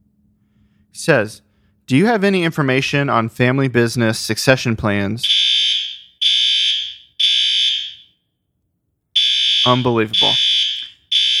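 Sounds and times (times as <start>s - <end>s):
speech: 1.0s - 5.4s, 9.6s - 10.5s
building fire alarm with high-pitched electronic tones: 5.2s - 8.2s, 9.2s - 11.3s.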